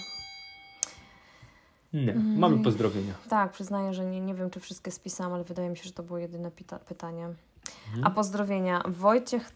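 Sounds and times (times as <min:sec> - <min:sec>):
small metal bell struck once: 0:00.0 - 0:01.2
speech: 0:01.9 - 0:09.5.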